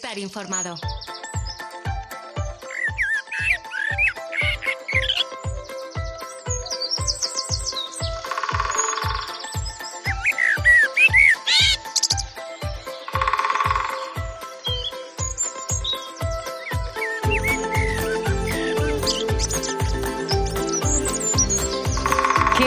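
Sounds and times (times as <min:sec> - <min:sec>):
speech: 0:00.0 - 0:01.2
birds chirping and trilling: 0:00.0 - 0:22.6
woodpecker tapping: 0:02.7 - 0:05.6, 0:06.5 - 0:12.3, 0:12.9 - 0:16.8, 0:17.4 - 0:22.6.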